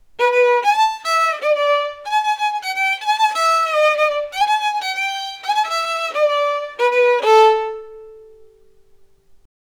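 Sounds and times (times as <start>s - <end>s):
cartoon musical violin: 0.2s - 8.7s.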